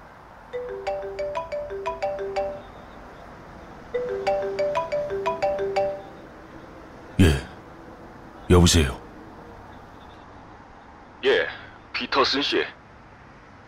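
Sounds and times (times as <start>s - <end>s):
mobile phone ringtone with bright electronic tones: 0.5s - 3.2s, 3.9s - 6.4s
speech: 8.6s - 9.0s, 12.3s - 12.8s.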